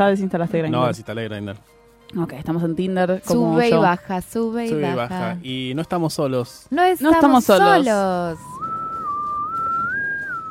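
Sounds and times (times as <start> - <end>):
speech: 0.0 - 8.6
person whistling a tune: 7.7 - 10.4.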